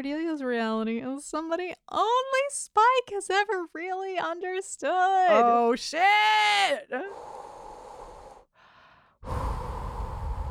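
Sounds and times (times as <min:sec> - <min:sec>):
speech: 0:00.0 - 0:07.5
heavy rushed panicked breathing into a paper bag: 0:07.1 - 0:10.4.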